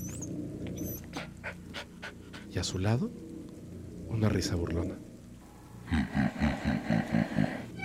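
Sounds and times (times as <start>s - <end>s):
dog whimpering and crying outside: 0.0s - 1.3s
dog panting: 0.8s - 2.6s
speech: 2.6s - 3.3s, 4.1s - 5.1s, 5.9s - 7.5s.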